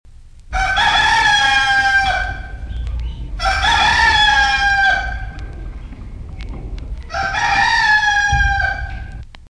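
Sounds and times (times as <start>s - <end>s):
rooster crowing: 0.5s - 2.6s, 3.4s - 5.4s, 7.1s - 9.2s.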